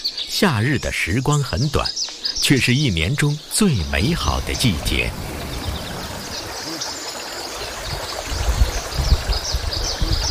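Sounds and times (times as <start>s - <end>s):
speech: 0.4s - 5.4s
snowmelt river water rushing near Shiqu County: 3.7s - 9.6s
splashing from rinsing food ingredients in river current: 3.9s - 10.2s.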